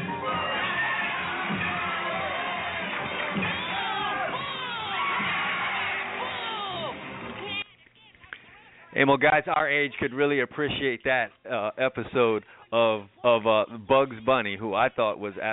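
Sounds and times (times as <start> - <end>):
large crowd roaring and cheering: 0.1 - 7.6
high shouts and whoops: 0.2 - 7.1
speech: 9.0 - 15.5.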